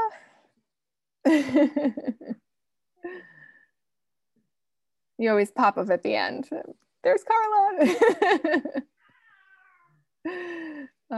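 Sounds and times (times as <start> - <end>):
speech: 1.2 - 2.4, 5.2 - 9.0, 10.2 - 11.1
cat meowing: 9.0 - 10.0.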